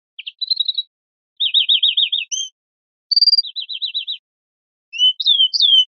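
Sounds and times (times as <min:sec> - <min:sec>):
greenfinch calls: 0:00.2 - 0:02.5, 0:03.1 - 0:04.2, 0:05.0 - 0:05.9.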